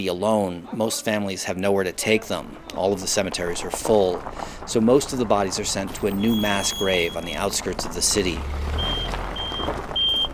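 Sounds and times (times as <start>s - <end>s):
speech: 0.0s - 8.8s
outdoor traffic noise on the outskirts of a city: 0.0s - 10.3s
low rumble of idling truck engines: 1.6s - 10.3s
truck reversing alarm beeps: 6.0s - 7.7s, 8.3s - 10.3s.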